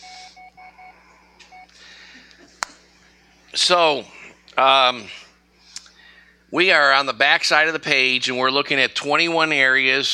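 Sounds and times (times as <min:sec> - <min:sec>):
mobile phone short electronic beeps: 0:00.0 - 0:01.8
low steady hum: 0:00.0 - 0:10.1
speech: 0:03.6 - 0:05.2, 0:06.5 - 0:10.1.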